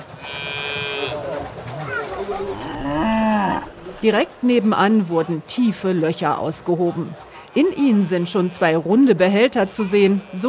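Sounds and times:
cows mooing at their shelter in a rural suburb of Nairobi Kenya: 0:00.1 - 0:04.0
speech: 0:02.3 - 0:03.0, 0:04.0 - 0:10.4.

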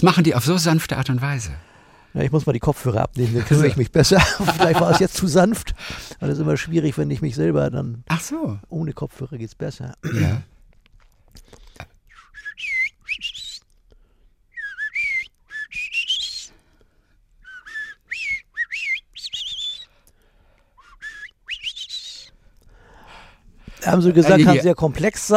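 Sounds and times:
speech: 0:00.0 - 0:10.5, 0:23.8 - 0:25.3
laughter: 0:03.2 - 0:05.2
person whistling an imitation of birdsong: 0:12.1 - 0:13.7, 0:14.5 - 0:16.6, 0:17.4 - 0:19.9, 0:20.8 - 0:22.3.

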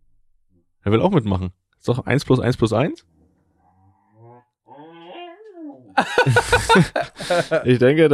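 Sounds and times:
speech: 0:00.8 - 0:03.1, 0:06.0 - 0:08.1
dog growling at people: 0:03.0 - 0:06.1
laughter: 0:05.9 - 0:08.0.

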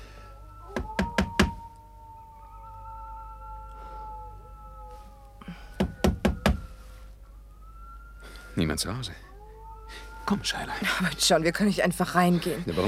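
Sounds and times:
firm knocking on open front door of a house: 0:00.7 - 0:01.6, 0:05.8 - 0:06.7
speech: 0:08.6 - 0:09.3, 0:10.3 - 0:12.8.

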